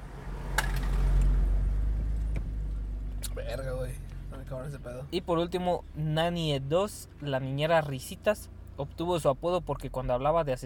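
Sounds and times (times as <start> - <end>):
car passing by outside: 0.0 - 5.3
speech: 3.4 - 10.6.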